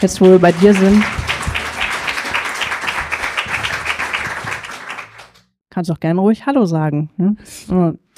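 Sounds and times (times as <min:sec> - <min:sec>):
speech: 0:00.0 - 0:01.2, 0:05.8 - 0:08.1
audience applauding: 0:00.0 - 0:05.5.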